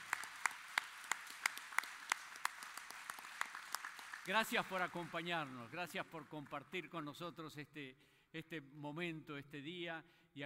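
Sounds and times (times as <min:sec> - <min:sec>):
church audience applauding in welcome: 0:00.0 - 0:06.6
speech: 0:04.2 - 0:10.4.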